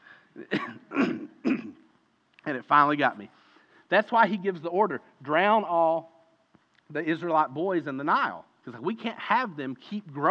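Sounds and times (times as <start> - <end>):
person clearing throat: 0.4 - 1.9
person coughing harshly: 0.4 - 1.9
speech: 2.5 - 6.1, 6.9 - 10.3.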